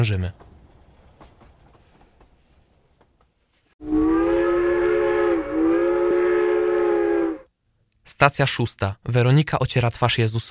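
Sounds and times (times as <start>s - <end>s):
speech: 0.0s - 0.4s, 8.2s - 10.4s
train rolling along and rattling: 0.0s - 3.7s
train whistle: 3.8s - 7.5s.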